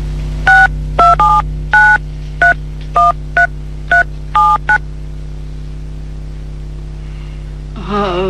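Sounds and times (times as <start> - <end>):
low steady hum: 0.0 - 8.2
touch-tone beeps of a phone number being dialed: 0.5 - 3.2, 3.9 - 4.8.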